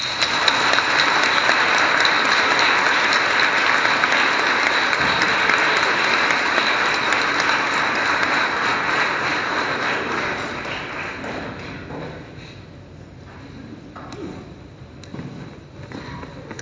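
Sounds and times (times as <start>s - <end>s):
audience applauding at a religious celebration: 0.0s - 11.9s.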